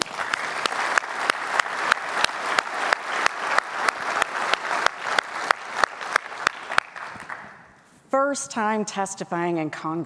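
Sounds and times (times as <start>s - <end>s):
audience applause: 0.0s - 7.6s
speech: 8.2s - 10.0s.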